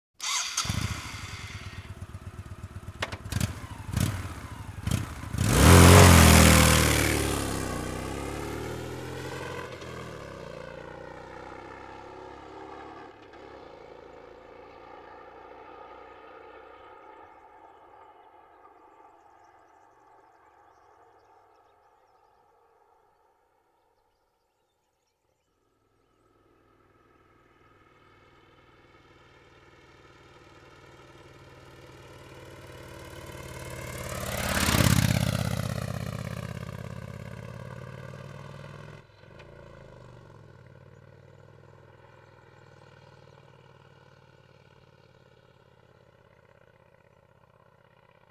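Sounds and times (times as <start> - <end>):
Honda VT 1100 Shadow motorcycle engine: 0.1 - 13.8, 27.9 - 48.3.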